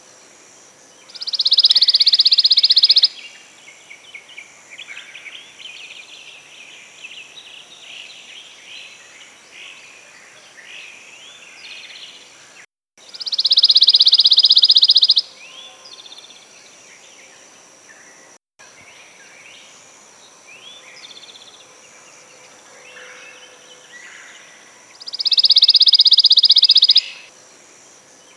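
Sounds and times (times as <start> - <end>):
Pine Warbler Setophaga pinus: 1.0 - 18.1, 22.4 - 27.3.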